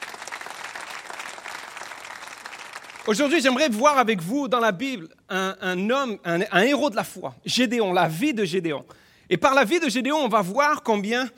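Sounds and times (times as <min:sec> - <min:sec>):
congregation applauding during a church sermon: 0:00.0 - 0:03.9
speech: 0:03.1 - 0:11.3.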